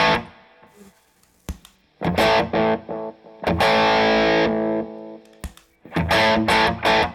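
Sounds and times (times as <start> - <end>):
heavily distorted electric guitar chords through a distorted amp and delay pedal: 2.0 - 5.2, 6.0 - 7.1.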